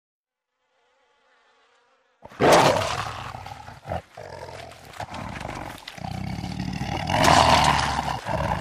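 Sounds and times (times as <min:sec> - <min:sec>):
lion roaring and growling: 0:02.2 - 0:08.5.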